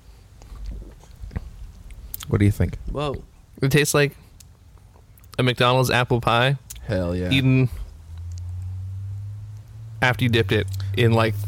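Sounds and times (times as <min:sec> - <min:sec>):
person sipping soup: 0:00.4 - 0:02.2
speech: 0:02.3 - 0:04.2, 0:05.4 - 0:07.8, 0:10.0 - 0:11.4.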